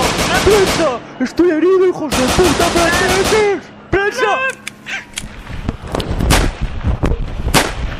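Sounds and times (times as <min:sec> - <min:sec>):
police gunfire, hundreds of bullets in rapid succession: 0:00.0 - 0:01.2, 0:02.1 - 0:03.6, 0:06.3 - 0:06.6, 0:07.5 - 0:07.9
speech: 0:00.5 - 0:05.0.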